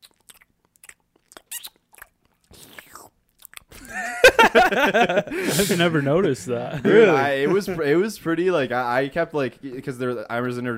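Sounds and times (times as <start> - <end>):
wet lip smacking while eating food: 0.0 - 3.8
open-mouthed chewing while eating food: 0.0 - 3.9
laughter: 3.8 - 7.9
speech: 4.5 - 10.7.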